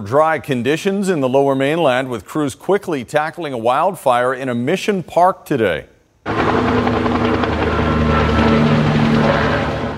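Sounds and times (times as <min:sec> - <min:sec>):
speech: 0:00.0 - 0:07.0
wildfire service helicopter rotor thrum over a small wildfire: 0:06.3 - 0:09.9.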